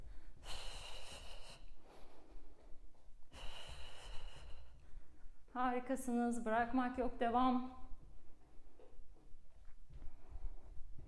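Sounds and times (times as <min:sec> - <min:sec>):
heavy breathing during an exercise workout: 0:00.0 - 0:05.5
speech: 0:05.6 - 0:07.8.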